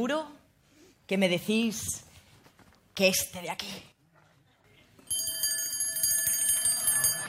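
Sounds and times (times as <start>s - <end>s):
speech: 1.1s - 2.1s, 3.0s - 3.9s
alarm clock with shrill metallic bell ringing: 5.1s - 7.2s.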